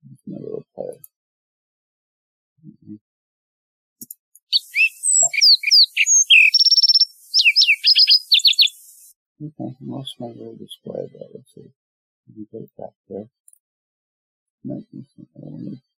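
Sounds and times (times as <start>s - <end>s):
lark sparrow song: 4.5s - 9.1s
speech: 9.4s - 13.4s, 14.6s - 15.9s.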